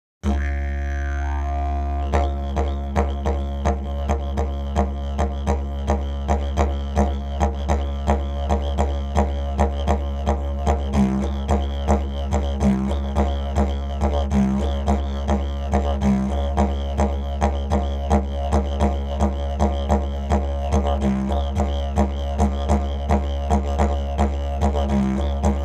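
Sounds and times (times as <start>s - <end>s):
didgeridoo playing: 0.2s - 25.6s.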